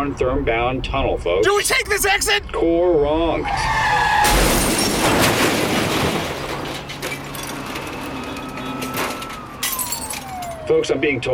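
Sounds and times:
speech: 0:00.1 - 0:05.6, 0:10.7 - 0:11.3
car skidding and crashing: 0:03.4 - 0:10.7.

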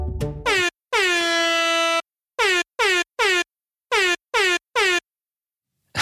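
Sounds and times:
air horn blasts tapping out Morse code: 0:00.4 - 0:05.0.

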